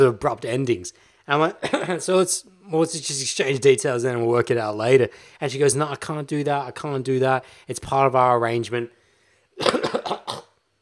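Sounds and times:
speech: 0.0s - 9.0s, 9.6s - 10.2s
harsh chesty coughs clearing phlegm from the throat: 1.6s - 2.0s, 9.6s - 10.6s.

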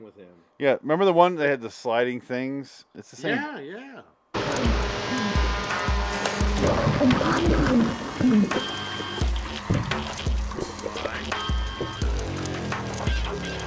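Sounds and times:
speech: 0.1s - 6.0s, 6.6s - 8.8s
gritty noise: 4.4s - 13.6s
harsh metallic drones: 4.4s - 13.6s
industrial-style film soundtrack music: 4.4s - 13.6s.

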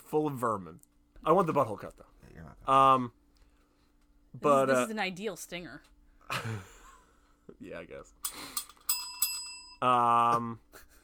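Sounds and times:
speech: 0.1s - 3.2s, 4.4s - 6.7s, 7.5s - 8.5s, 9.8s - 10.8s
bicycle bell ringing: 8.2s - 9.8s.

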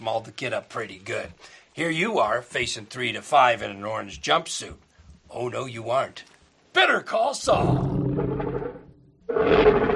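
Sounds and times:
speech: 0.0s - 8.0s
tiger roaring: 7.5s - 9.9s.

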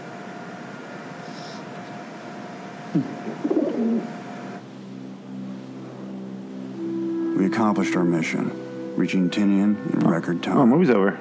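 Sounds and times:
quiet steady hum: 0.0s - 11.2s
speech: 2.9s - 4.2s, 7.4s - 11.2s
pigeon cooing: 2.9s - 4.6s.

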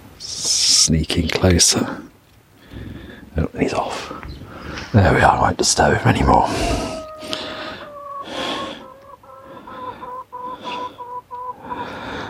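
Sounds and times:
speech: 0.8s - 2.2s, 3.4s - 6.9s
chickens clucking and squawking: 3.8s - 12.2s.

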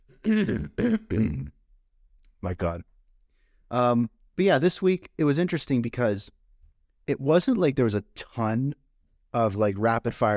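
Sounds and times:
person clearing throat: 0.2s - 1.5s
person coughing: 0.2s - 1.5s
speech: 0.2s - 1.6s, 2.4s - 2.9s, 3.7s - 6.4s, 7.1s - 10.3s.

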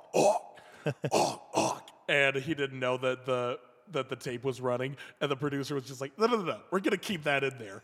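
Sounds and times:
person hawking up a loogie and clearing throat: 0.0s - 2.0s
speech: 0.1s - 7.8s.

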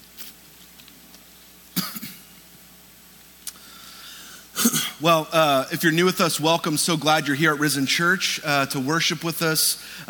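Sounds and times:
faint coughing from a tickle in the throat: 1.8s - 2.3s, 4.6s - 5.0s
speech: 5.0s - 10.0s.

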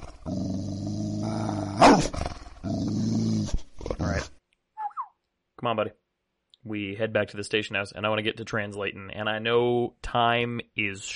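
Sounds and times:
animal growling at the woods: 0.0s - 4.4s
speech: 2.0s - 3.6s, 5.6s - 6.0s, 6.6s - 11.1s.

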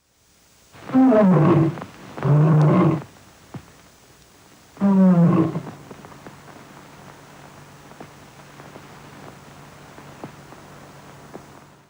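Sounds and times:
faint hiss and light crackle of an old film recording: 0.0s - 11.8s
female lion roaring for a studio logo: 0.9s - 3.1s, 4.8s - 5.8s.

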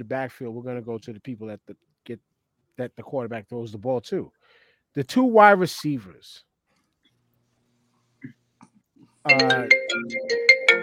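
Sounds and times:
speech: 0.0s - 6.5s, 8.2s - 8.4s, 9.2s - 10.5s
phone ringtone playing a bright melodic jingle of repeated tones: 9.3s - 10.8s.

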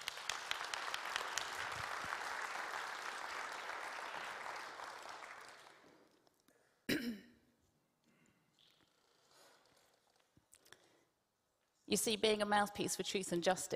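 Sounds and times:
crowd applauding: 0.0s - 6.1s
sharp throat clearing: 6.9s - 7.4s
speech: 11.9s - 13.7s.

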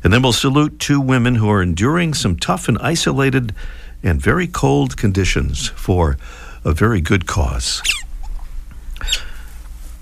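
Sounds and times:
speech: 0.1s - 8.0s, 9.0s - 9.3s
newly hatching chick peeping: 7.8s - 9.4s.

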